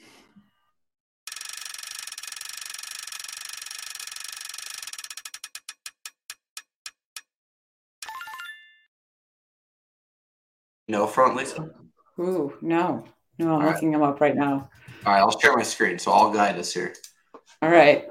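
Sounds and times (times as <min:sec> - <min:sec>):
prize wheel spinning and clicking: 0:01.3 - 0:07.3
speech: 0:10.9 - 0:18.0.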